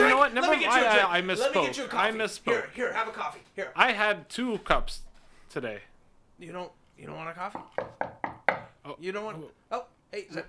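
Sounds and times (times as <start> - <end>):
speech: 0.3 - 8.2, 8.8 - 10.4
knocking on a door: 7.5 - 8.8.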